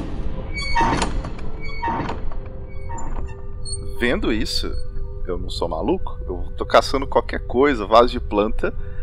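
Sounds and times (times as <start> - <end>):
heavy emergency door clunking open: 0.0 - 3.6
faint rattle and metallic creak of emergency door: 0.5 - 4.0
speech: 4.0 - 8.8.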